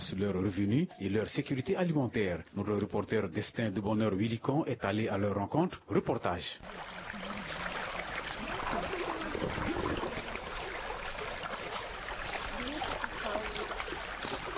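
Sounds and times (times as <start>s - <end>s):
speech: 0.2s - 7.7s
splashing of fishermen's canoes on the Mbomou River: 6.6s - 14.5s.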